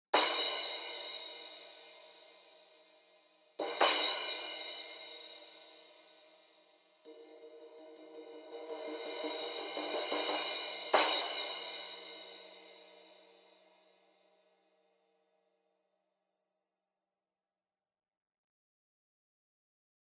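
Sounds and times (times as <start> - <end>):
14 thin crash cymbal: 0.2 - 2.8, 3.6 - 6.4, 7.1 - 13.7.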